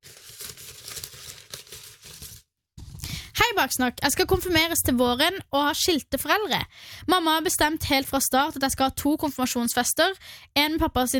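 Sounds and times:
folded paper note crinkling as it is unfolded: 0.0s - 3.2s
speech: 3.5s - 11.1s.

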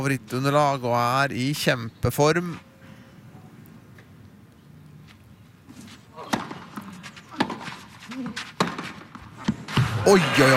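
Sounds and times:
speech: 0.0s - 2.7s, 10.0s - 10.5s
tennis ball strikes off racket strings in a professional match: 6.2s - 10.0s.

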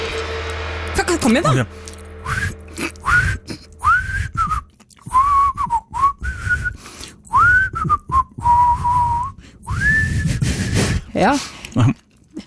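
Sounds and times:
speech: 1.2s - 2.4s, 11.2s - 12.0s
person whistling a wandering tuneless melody: 2.2s - 11.0s.

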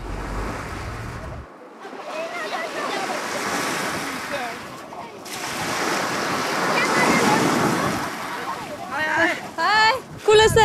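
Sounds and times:
sea waves washing onto an outdoor swimming beach: 0.0s - 10.0s.

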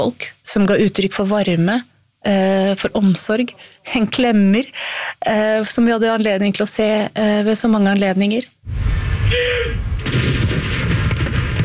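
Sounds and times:
speech: 0.0s - 10.8s
ceremonial cannon salute fired outdoors from fortress: 8.7s - 11.6s.

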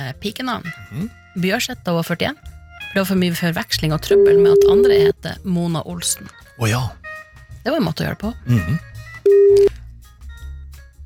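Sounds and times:
speech: 0.1s - 7.0s, 7.6s - 9.8s
telephone busy signal: 4.1s - 5.1s, 9.3s - 9.7s.

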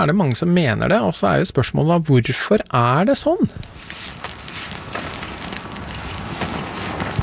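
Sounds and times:
speech: 0.0s - 4.3s
campfire crackling in a forest: 3.4s - 7.2s.

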